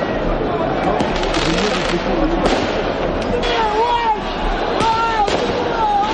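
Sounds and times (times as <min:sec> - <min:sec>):
dense noisy crowd roar during riots in France: 0:00.0 - 0:06.1
fireworks and firecrackers popping during riots in France: 0:01.0 - 0:03.3, 0:04.8 - 0:06.1.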